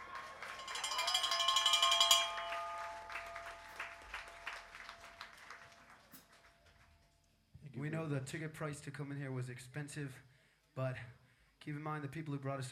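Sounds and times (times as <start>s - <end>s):
audience applause at a concert in Tokyo: 0.0s - 7.0s
speech: 7.8s - 12.7s.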